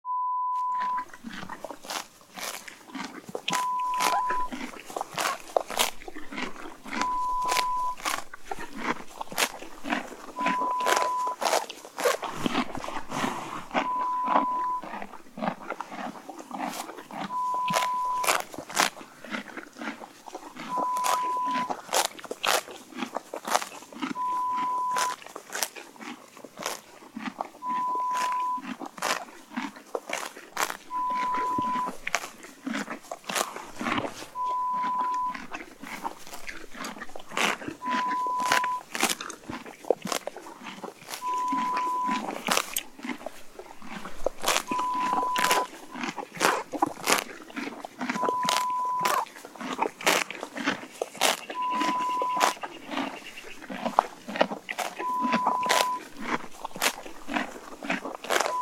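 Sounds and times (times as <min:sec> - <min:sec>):
horse eating grass: 0:00.4 - 0:58.5.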